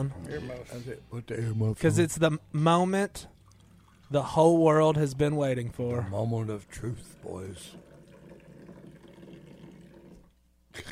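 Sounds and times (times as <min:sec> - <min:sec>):
speech: 0:00.0 - 0:03.3, 0:04.1 - 0:07.9
hot coffee poured from high up into a cup: 0:03.3 - 0:04.9, 0:05.8 - 0:10.4.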